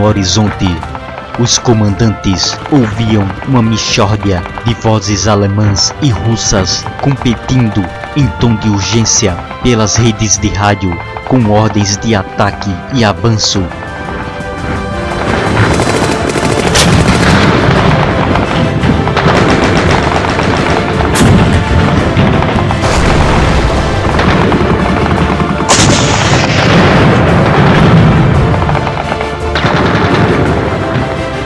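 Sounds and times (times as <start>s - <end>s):
speech: 0.0s - 13.8s
gunfire in battle between German and Soviet forces: 15.2s - 31.3s
artillery fire in battle between German and Soviet forces: 15.2s - 31.4s.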